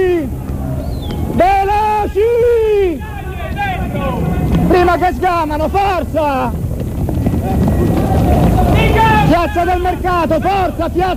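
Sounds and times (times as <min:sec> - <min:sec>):
crowd of protesters running along a street: 0:00.0 - 0:11.1
people murmuring: 0:00.0 - 0:11.1
people shouting: 0:00.0 - 0:11.1
speech: 0:05.1 - 0:06.6, 0:07.4 - 0:08.4, 0:09.0 - 0:11.1.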